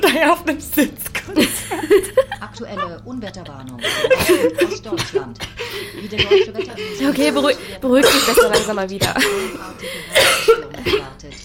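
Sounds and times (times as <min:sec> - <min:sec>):
speech: 0:00.1 - 0:11.4
laughter: 0:01.0 - 0:11.4
person coughing harshly, struggling to breathe: 0:03.9 - 0:06.5, 0:07.9 - 0:11.4.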